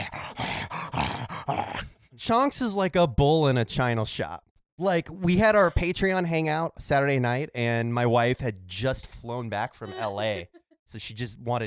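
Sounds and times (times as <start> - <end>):
person imitating a dog growling: 0.0 - 2.0
speech: 1.5 - 11.6.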